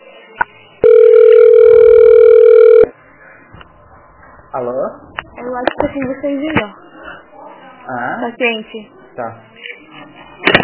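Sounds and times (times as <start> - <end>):
telephone transfer tone as a call is passed to another line: 0.8 - 2.9
speech: 4.6 - 6.8, 7.9 - 9.5.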